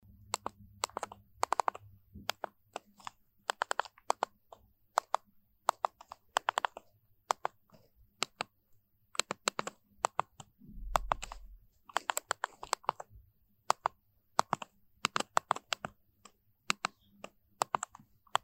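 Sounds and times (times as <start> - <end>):
SMS typing on an old Chinese mobile phone keypad: 0.3 - 7.6, 8.2 - 8.6, 9.2 - 18.4.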